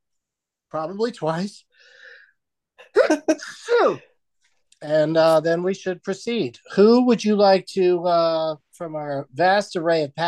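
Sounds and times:
speech: 0.7s - 2.0s, 2.8s - 4.1s, 4.8s - 10.2s
loud sneeze with breathy tail: 2.9s - 4.1s.

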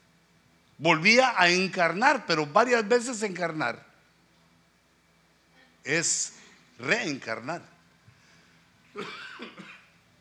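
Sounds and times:
speech: 0.8s - 3.9s, 5.8s - 7.7s, 9.0s - 9.6s
small raspy double cough: 8.9s - 9.9s.

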